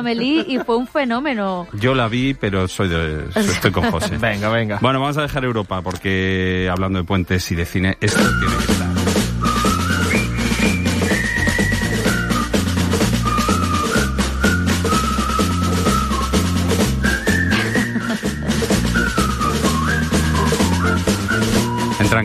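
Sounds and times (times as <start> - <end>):
laughter: 0.0 - 1.3, 3.3 - 5.2, 17.5 - 19.3
speech: 0.0 - 9.2
jaunty march melody from a film soundtrack whistled loudly: 8.0 - 22.2.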